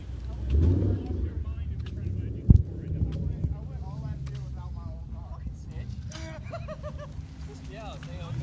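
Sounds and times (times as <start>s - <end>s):
race car engine starting up: 0.0s - 4.6s
outdoor wind noise: 0.0s - 6.5s
people talking: 0.0s - 8.4s
laughter: 6.1s - 8.4s.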